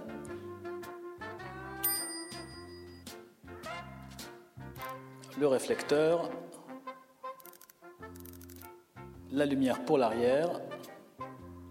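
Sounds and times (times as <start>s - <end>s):
rhythmic music: 0.0s - 11.6s
bright metallic bicycle bell ding: 1.8s - 3.1s
speech: 5.4s - 6.5s, 9.3s - 10.7s.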